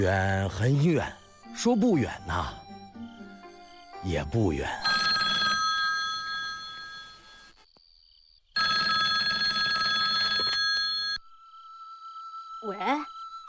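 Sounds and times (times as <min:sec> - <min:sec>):
speech: 0:00.0 - 0:02.6, 0:04.0 - 0:04.9
telephone ringing with trilling bell tones: 0:04.8 - 0:07.5, 0:08.6 - 0:11.2.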